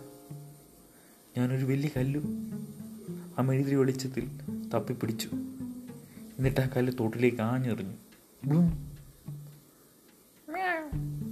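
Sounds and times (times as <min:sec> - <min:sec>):
speech: 0:01.4 - 0:02.8, 0:03.4 - 0:05.6, 0:06.4 - 0:08.9
cat meowing by the bank of a stream: 0:10.5 - 0:11.0.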